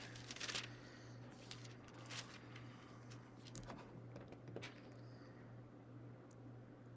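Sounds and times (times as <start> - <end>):
Bible pages being turned: 0.0 - 0.8, 1.4 - 3.9
steady low electrical hum: 0.0 - 6.9.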